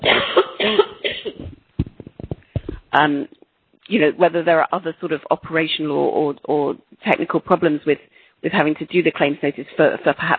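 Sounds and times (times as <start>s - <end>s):
person coughing with heavy coughs and short sharp hacks: 0.0s - 1.6s
speech: 2.9s - 10.3s.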